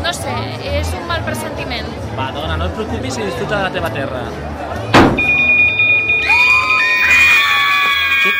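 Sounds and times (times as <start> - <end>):
speech: 0.2 - 5.2
man falling onto a police car with a heavy thud: 4.9 - 5.4
police car alarm pulsing and wailing: 5.2 - 8.3.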